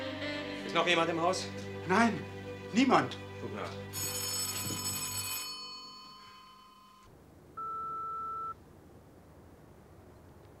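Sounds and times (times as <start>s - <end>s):
speech: 0.7s - 4.1s
telephone ringing at night in a house: 3.9s - 8.6s.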